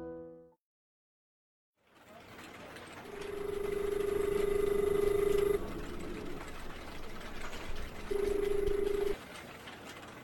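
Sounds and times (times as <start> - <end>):
electronic telephone ringing tone on a call to a switchboard: 3.1 - 9.2.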